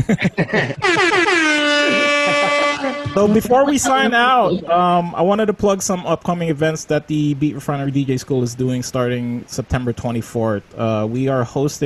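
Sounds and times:
speech: 0:00.0 - 0:02.0, 0:03.1 - 0:11.8
laughter: 0:00.0 - 0:04.8
blaring air horn blast: 0:00.8 - 0:04.1.

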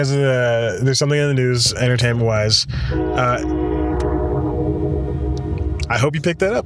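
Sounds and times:
speech: 0:00.0 - 0:03.8, 0:05.9 - 0:06.6
train rumbling past: 0:02.6 - 0:06.6
train horn: 0:02.8 - 0:06.0.

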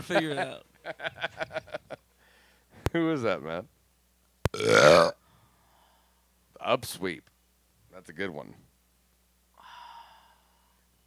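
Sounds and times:
speech: 0:00.0 - 0:01.6, 0:02.9 - 0:03.8, 0:04.6 - 0:05.2, 0:06.6 - 0:07.3, 0:08.0 - 0:08.6
burp: 0:04.5 - 0:05.2.

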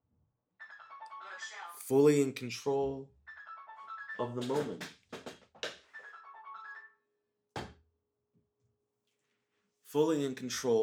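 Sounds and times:
short melodic mobile phone ringtone: 0:00.6 - 0:01.8, 0:03.3 - 0:04.6, 0:05.9 - 0:07.1
speech: 0:01.5 - 0:03.2, 0:04.2 - 0:05.0, 0:09.9 - 0:10.8.

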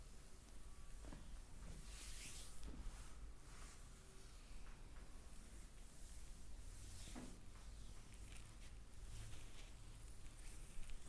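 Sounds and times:
body massage rubbing and rustling: 0:00.2 - 0:04.6, 0:05.2 - 0:11.0.

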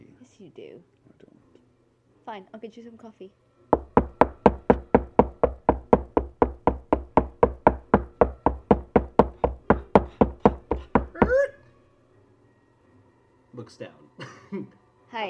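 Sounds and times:
speech: 0:00.4 - 0:01.3, 0:02.3 - 0:03.4, 0:13.7 - 0:15.2
sharp knocking on a door: 0:03.8 - 0:11.5.

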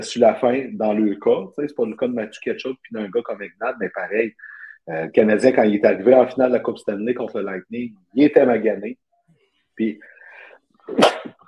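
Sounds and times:
speech: 0:00.0 - 0:09.0, 0:09.8 - 0:10.1, 0:10.9 - 0:11.4
sneeze from allergies: 0:10.9 - 0:11.4.

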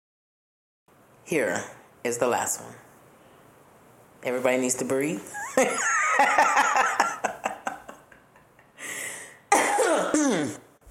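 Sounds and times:
speech: 0:01.3 - 0:02.9, 0:04.2 - 0:07.2
laughter: 0:05.4 - 0:08.6
loud throat clearing with rough raspy hacks: 0:09.5 - 0:10.7.

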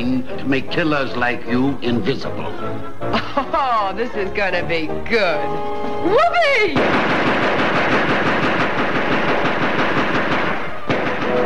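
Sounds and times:
speech: 0:00.0 - 0:08.2
laughter: 0:03.1 - 0:03.9
machine gun fire in a radio drama: 0:06.8 - 0:11.4.

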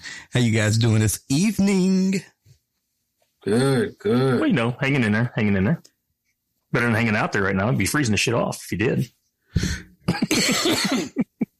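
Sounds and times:
speech: 0:00.3 - 0:02.4, 0:03.4 - 0:05.9, 0:06.7 - 0:11.2
person with a cold and congestion coughing: 0:03.4 - 0:04.5, 0:10.1 - 0:11.4.

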